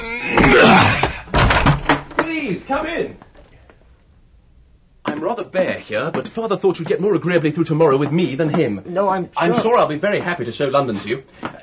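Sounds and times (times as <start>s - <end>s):
person grunting and murmuring wordlessly: 0.0s - 1.3s
door being forced open with rattling thumps: 0.0s - 3.0s
speech: 2.5s - 3.3s, 5.2s - 11.6s.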